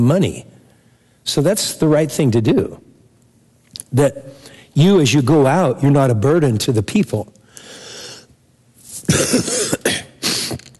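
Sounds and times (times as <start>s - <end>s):
speech: 0.0s - 0.6s, 1.2s - 2.9s, 3.9s - 7.4s
man clearing throat: 9.1s - 10.7s
man coughing: 9.1s - 10.7s.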